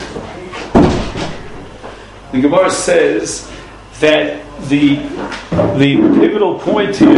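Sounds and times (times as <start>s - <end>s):
wooden door pushed shut: 0.7s - 1.7s
speech: 2.3s - 7.1s.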